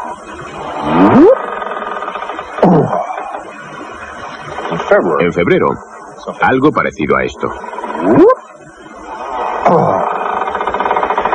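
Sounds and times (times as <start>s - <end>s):
person imitating whale song with moaning sliding vocal swoops: 0.8s - 1.4s, 2.6s - 3.4s, 8.0s - 8.4s, 9.6s - 10.2s
speech: 4.9s - 8.3s.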